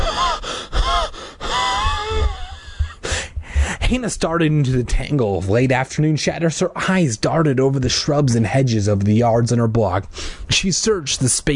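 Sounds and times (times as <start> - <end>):
female gasping for air after running outdoors on a residential block: 0.0 - 3.8
speech: 3.9 - 11.5.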